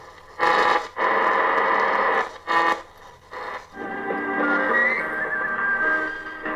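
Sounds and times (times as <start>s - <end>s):
crackly shortwave radio broadcast reception: 0.0s - 6.5s
heterodyne whistle: 4.4s - 6.5s.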